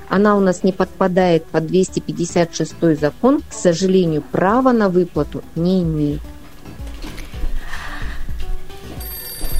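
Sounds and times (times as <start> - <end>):
speech: 0.1 - 6.3
telephone ringing with an incoming call on a call-in line: 9.0 - 9.5.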